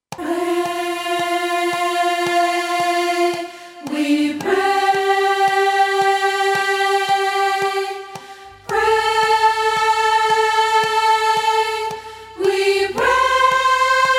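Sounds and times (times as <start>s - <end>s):
soprano singing a prayer: 0.1s - 14.1s.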